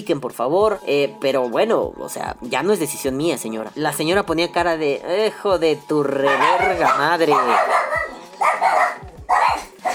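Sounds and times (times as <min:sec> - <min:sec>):
speech: 0:00.0 - 0:08.1
dogs barking excitedly: 0:06.2 - 0:09.9.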